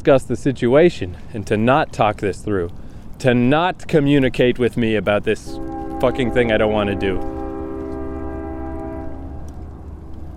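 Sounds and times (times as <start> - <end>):
speech: 0.0 - 7.4
small passenger train cars rumbling past: 0.0 - 10.3
small passenger train horn blast: 5.4 - 10.2.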